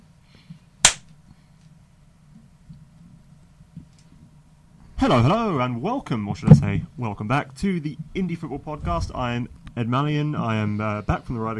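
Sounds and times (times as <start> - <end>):
single hand clap to synchronize audio: 0.8 - 1.1
speech: 5.0 - 11.5.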